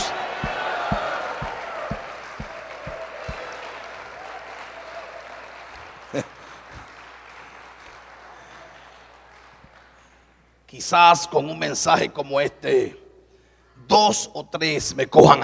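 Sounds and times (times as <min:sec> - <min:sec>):
low thuds: 0:00.0 - 0:03.4
church congregation applauding: 0:00.0 - 0:10.5
speech: 0:10.8 - 0:13.0, 0:14.0 - 0:15.4.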